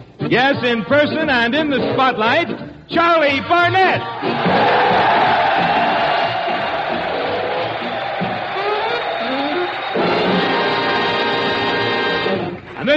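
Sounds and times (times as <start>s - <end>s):
speech: 0.3s - 5.1s
veterans cheering and applauding at a military hospital at Fort Devens, Massachusetts: 4.1s - 12.9s
whoops and shouts: 4.2s - 10.1s.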